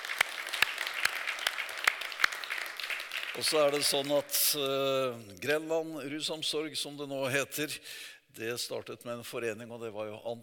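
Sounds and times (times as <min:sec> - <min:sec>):
audience applause: 0:00.0 - 0:04.4
speech: 0:03.4 - 0:10.4.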